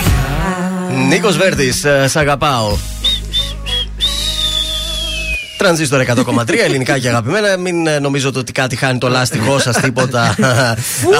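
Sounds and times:
speech: 1.0 - 3.0, 5.6 - 11.1
person whistling short notes and a long downward-gliding whistle: 2.7 - 5.9
laughter: 3.1 - 7.2, 9.2 - 11.1.

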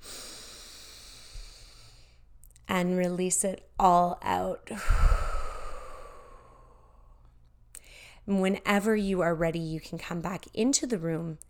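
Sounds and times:
slow deep breath in: 0.0 - 2.2, 4.8 - 7.2, 7.8 - 8.2
speech: 2.7 - 5.1, 8.3 - 11.4.

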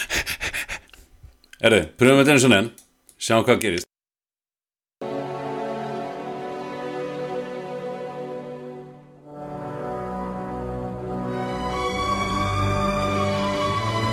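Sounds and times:
speech: 1.6 - 3.9
sweeping orchestral theme music from a famous film with sustained strings: 5.0 - 14.1.

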